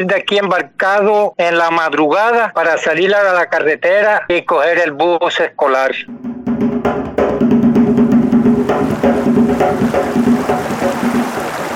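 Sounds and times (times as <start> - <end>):
speech: 0.0 - 6.8
fast stream water rushing and splashing along a rural path: 8.1 - 11.7.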